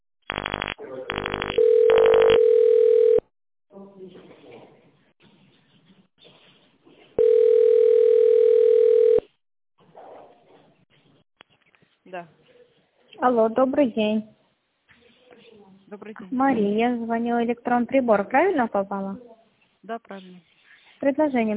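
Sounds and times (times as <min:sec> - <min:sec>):
touch-tone dialing of an internal extension on a company phone line: 0:00.3 - 0:03.2, 0:07.2 - 0:09.2
speech: 0:13.3 - 0:14.3, 0:16.0 - 0:21.5.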